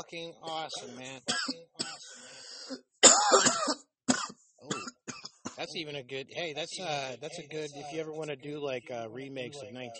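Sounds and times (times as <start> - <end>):
speech: 0.0 - 3.9, 5.6 - 9.9
harsh raspy coughing: 0.4 - 5.7.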